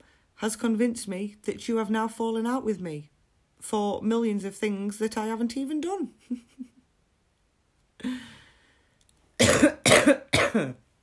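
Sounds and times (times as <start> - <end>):
speech: 0.4 - 6.7, 8.0 - 8.3, 9.6 - 10.8
person coughing harshly: 9.4 - 10.8.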